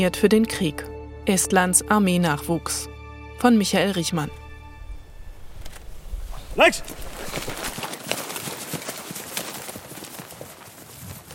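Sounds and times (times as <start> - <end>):
speech: 0.0 - 4.4, 6.6 - 7.6
heavy boots running through knee-high grass: 6.1 - 11.3.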